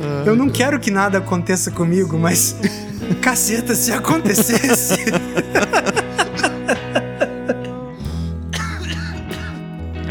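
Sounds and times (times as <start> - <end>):
speech: 0.2 - 5.6
laughter: 2.3 - 8.9
short sharp coughs: 8.6 - 9.6.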